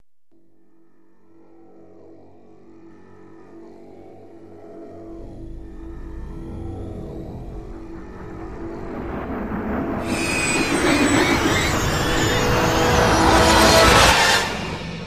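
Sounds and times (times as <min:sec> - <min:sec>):
starship passing by with buildup: 0:04.8 - 0:15.0.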